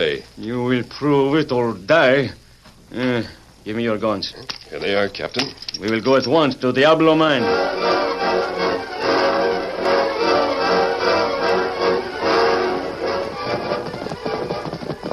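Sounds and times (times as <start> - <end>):
speech: 0.0 - 8.5
dense full sound: 0.0 - 15.1
hoofbeats of a ridden horse at a gallop: 11.4 - 15.1.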